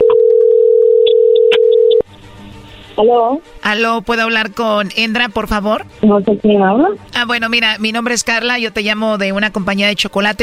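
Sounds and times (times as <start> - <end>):
telephone dial tone for an outgoing call: 0.0 - 2.0
speech: 3.0 - 10.4.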